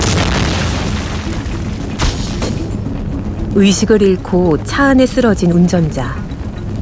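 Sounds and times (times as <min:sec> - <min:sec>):
car fire explosion boom: 0:00.0 - 0:02.8
car fire heavy rumbling roar: 0:00.0 - 0:03.0
speech: 0:03.6 - 0:06.2.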